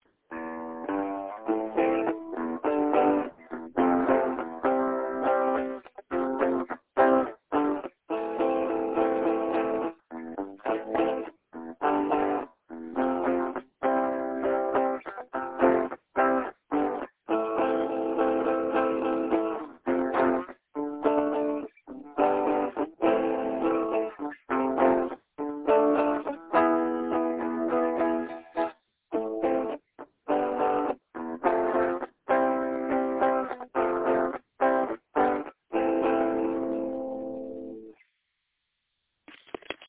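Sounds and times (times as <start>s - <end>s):
guitar through small guitar amp: 0.0s - 38.0s.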